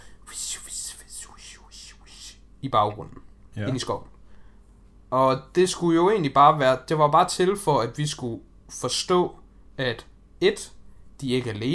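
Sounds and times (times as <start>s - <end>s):
person imitating whispered background speech: 0.0s - 2.5s
speech: 2.6s - 4.1s, 5.1s - 11.7s.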